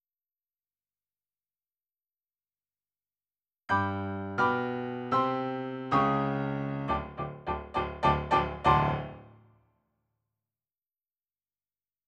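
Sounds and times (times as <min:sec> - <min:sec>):
rock and roll piano: 0:03.7 - 0:09.3.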